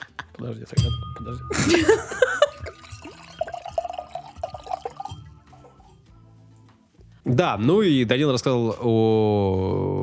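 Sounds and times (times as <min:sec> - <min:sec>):
laughter: 0:00.0 - 0:00.4, 0:01.6 - 0:02.8
speech: 0:00.4 - 0:02.3, 0:07.3 - 0:10.0
brief clink: 0:00.7 - 0:06.1
liquid pouring into a glass: 0:01.6 - 0:06.0.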